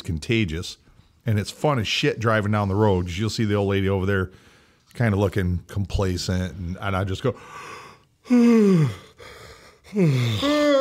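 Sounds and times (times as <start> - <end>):
speech: 0.1 - 10.7
human yawns: 8.2 - 10.7.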